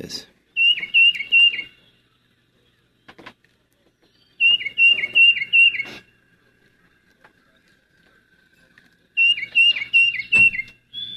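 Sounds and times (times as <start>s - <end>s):
speech: 0.0s - 0.3s
tufted titmouse singing a whistled two-note phrase: 0.6s - 2.1s, 4.1s - 6.0s, 9.2s - 11.1s.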